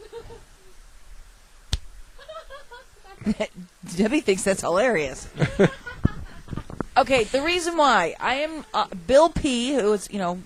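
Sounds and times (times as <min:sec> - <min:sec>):
person's hand slapping their own face: 0:01.7 - 0:01.9
laughter: 0:02.2 - 0:03.5, 0:05.3 - 0:06.8
speech: 0:03.2 - 0:05.8, 0:07.0 - 0:10.4.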